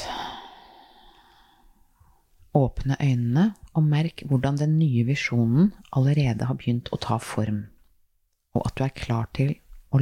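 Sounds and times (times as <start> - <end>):
long soft exhale: 0.0 - 1.9
speech: 2.6 - 7.7, 8.5 - 9.9.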